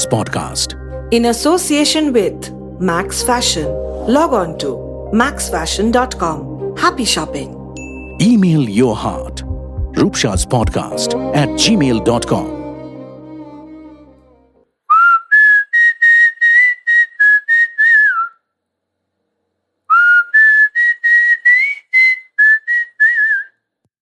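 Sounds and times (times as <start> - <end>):
speech: 0.0 - 7.6, 8.2 - 12.6
person whistling a tune: 14.9 - 18.4, 19.9 - 23.6.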